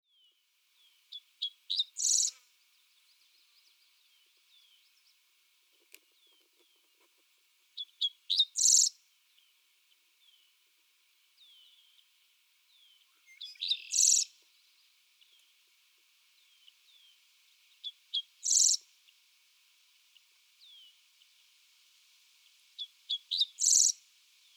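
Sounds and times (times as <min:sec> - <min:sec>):
Dickcissel singing: 0:00.1 - 0:05.2, 0:07.8 - 0:09.6, 0:11.4 - 0:12.1, 0:12.7 - 0:15.5, 0:17.8 - 0:18.8, 0:22.8 - 0:24.5.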